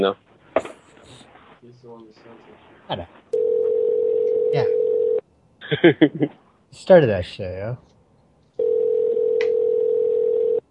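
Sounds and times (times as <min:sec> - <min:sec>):
speech: 0:00.0 - 0:00.3, 0:01.6 - 0:03.6, 0:05.7 - 0:07.9
telephone line tone during an unanswered call: 0:03.4 - 0:05.2, 0:08.6 - 0:10.6.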